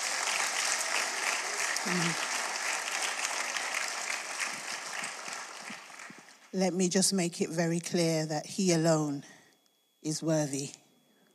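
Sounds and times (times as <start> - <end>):
audience clapping hands: 0.0 - 6.5
speech: 1.8 - 2.3, 6.5 - 9.4, 10.0 - 10.8.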